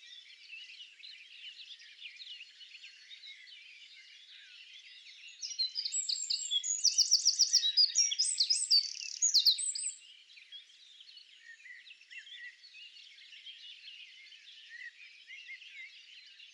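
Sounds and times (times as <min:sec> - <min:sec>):
soft bird chirps: 0:00.0 - 0:16.5
Eurasian wren Troglodytes troglodytes singing: 0:05.3 - 0:10.0.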